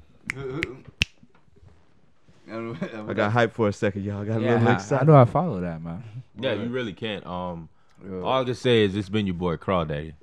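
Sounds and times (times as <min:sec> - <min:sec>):
finger snaps: 0:00.2 - 0:01.3
speech: 0:00.4 - 0:01.0, 0:02.5 - 0:10.2.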